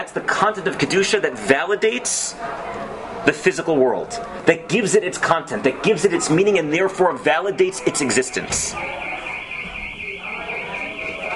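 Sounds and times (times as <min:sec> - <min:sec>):
speech: 0:00.0 - 0:09.1
low voices murmuring faintly: 0:00.0 - 0:11.3
door alarm high-pitched electronic beeping: 0:08.3 - 0:11.3.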